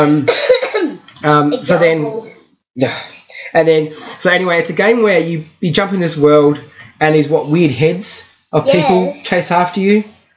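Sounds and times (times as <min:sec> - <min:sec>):
speech: 0:00.0 - 0:00.6, 0:01.2 - 0:10.1
harsh voiced coughs: 0:00.1 - 0:01.0.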